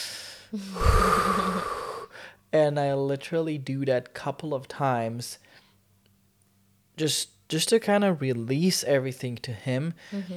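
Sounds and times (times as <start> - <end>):
person taking a deep breath: 0.0 - 2.4
speech: 0.5 - 1.8, 2.5 - 5.6, 7.0 - 10.3.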